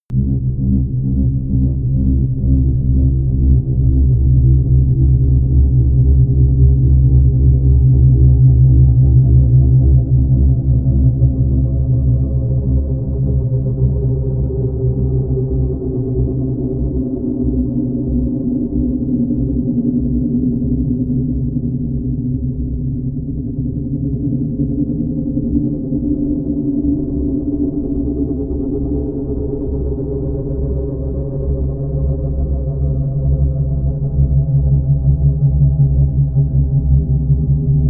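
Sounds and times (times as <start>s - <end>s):
very low drone scorch: 0.1s - 37.8s.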